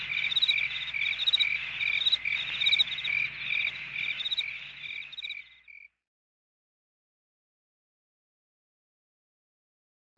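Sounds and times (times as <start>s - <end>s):
faint low hum: 0.0s - 5.8s
crickets chirping: 0.0s - 5.9s.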